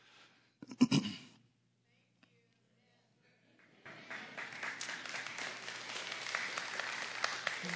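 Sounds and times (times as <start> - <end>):
cough: 0.6 - 1.3
audience clapping: 3.6 - 7.7.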